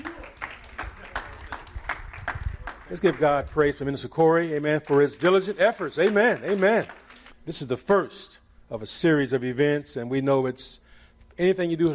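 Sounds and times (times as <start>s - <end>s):
audience clapping along in a steady even rhythm: 0.0s - 4.0s, 4.7s - 7.4s
speech: 2.9s - 10.8s, 11.4s - 11.9s.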